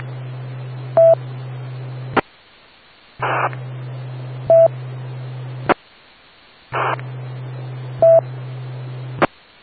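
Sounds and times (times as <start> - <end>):
hissing humming amateur radio repeater channel: 0.0 - 9.6
telephone touch-tone beeps dialing a phone call: 8.0 - 8.2.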